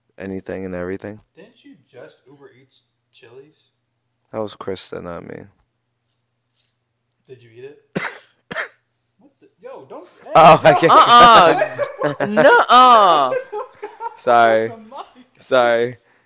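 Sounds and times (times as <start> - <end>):
speech: 0.2 - 5.6, 7.3 - 8.1, 9.7 - 16.0
person coughing deliberately into a microphone: 8.0 - 8.9
voiced laugh-like sounds: 10.2 - 14.4.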